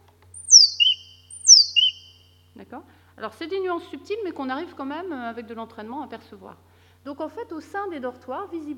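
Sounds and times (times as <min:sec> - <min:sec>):
bird singing in a local song dialect in a hedge: 0:00.4 - 0:02.2
speech: 0:02.6 - 0:08.7.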